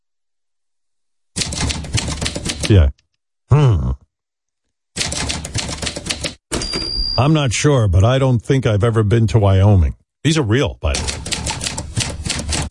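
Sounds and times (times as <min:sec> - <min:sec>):
rapid mechanical typewriter clatter: 0:01.4 - 0:02.7, 0:05.0 - 0:06.4, 0:11.0 - 0:12.7
speech: 0:02.7 - 0:04.0, 0:07.2 - 0:11.3.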